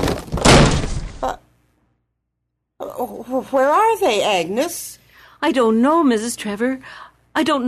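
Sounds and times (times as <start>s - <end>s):
heavy wooden door being broken down: 0.0s - 1.2s
heavy thud: 0.0s - 1.3s
speech: 3.0s - 7.6s.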